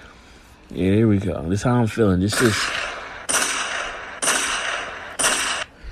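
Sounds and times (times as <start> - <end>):
speech: 0.7 - 2.8
gunshot sound effects: 2.3 - 5.8.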